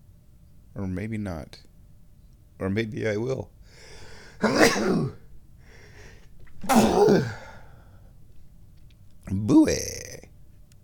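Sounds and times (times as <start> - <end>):
speech: 0.8 - 1.7, 2.6 - 5.2, 6.6 - 7.4, 9.4 - 10.0
quiet breathing: 3.6 - 4.4, 5.6 - 6.4, 7.3 - 8.2
person sneezing: 4.4 - 5.2, 6.6 - 7.7.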